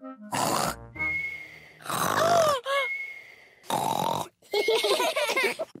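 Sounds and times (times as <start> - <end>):
voice imitating loud pig-like snoring: 0.3 - 0.9, 1.8 - 2.6, 3.6 - 4.4
laughter: 4.5 - 5.7.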